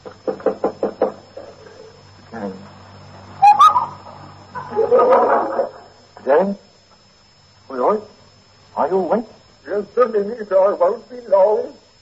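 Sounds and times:
knocking on a wooden bedroom door: 0.3 - 1.3
short whistling sound: 3.4 - 4.0
laughter: 4.6 - 5.9
speech: 9.0 - 9.3, 10.2 - 11.8.

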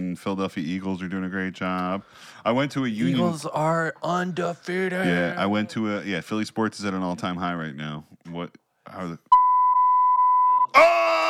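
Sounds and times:
speech: 0.2 - 9.3, 10.7 - 11.2
steady high-pitched censor bleep: 9.3 - 10.8.

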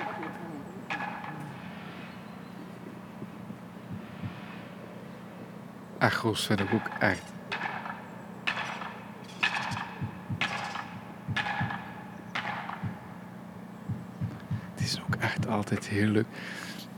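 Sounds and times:
sharp knocks echoing off walls in the Papegaaienwijk neighbourhood: 0.0 - 1.7, 6.6 - 15.5
steady low urban hum: 0.0 - 16.9
speech: 6.0 - 7.4, 15.7 - 16.7.

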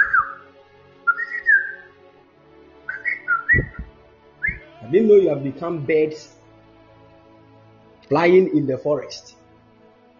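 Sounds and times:
person whistling with the tongue: 1.1 - 1.9, 2.9 - 4.6
low thumps: 3.4 - 4.7
speech: 4.9 - 6.4, 8.1 - 9.4.

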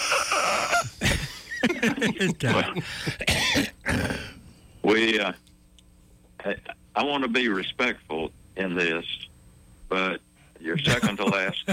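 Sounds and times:
laughter: 0.0 - 3.2, 10.8 - 11.7
person coughing: 0.0 - 4.4
person clearing their throat: 0.4 - 4.4
speech: 1.8 - 4.2, 4.9 - 5.4, 6.4 - 9.2, 9.9 - 11.7
person making a short voiced grunt-like sound: 1.8 - 4.4.

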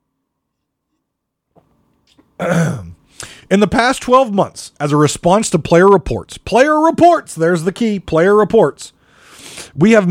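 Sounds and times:
speech: 2.1 - 2.8, 3.5 - 10.0
loud rough throat clearing: 2.4 - 3.0
short breathy exhale: 3.1 - 3.5, 9.0 - 9.8.

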